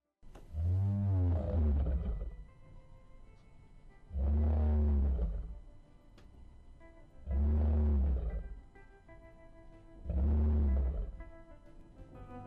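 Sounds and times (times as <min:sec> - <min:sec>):
lion roar played at half speed: 0:00.5 - 0:02.4, 0:04.1 - 0:05.7, 0:07.2 - 0:08.6, 0:10.0 - 0:11.3.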